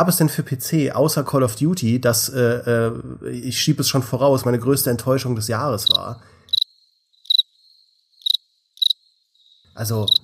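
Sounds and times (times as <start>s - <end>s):
speech: 0.0s - 6.4s, 9.8s - 10.2s
crickets chirping in high-pitched trills: 5.6s - 10.2s.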